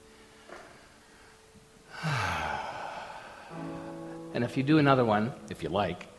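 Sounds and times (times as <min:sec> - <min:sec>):
deep breath in and out: 0:00.2 - 0:04.3
speech: 0:04.4 - 0:06.1.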